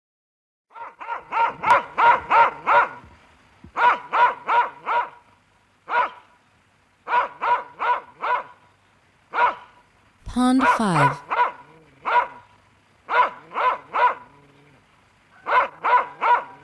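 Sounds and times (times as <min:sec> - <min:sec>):
dog barking: 0:00.7 - 0:03.0, 0:03.8 - 0:05.2, 0:05.9 - 0:06.3, 0:07.0 - 0:08.6, 0:09.3 - 0:09.8, 0:11.2 - 0:12.4, 0:13.1 - 0:14.3, 0:15.3 - 0:16.6
speech: 0:10.4 - 0:11.3.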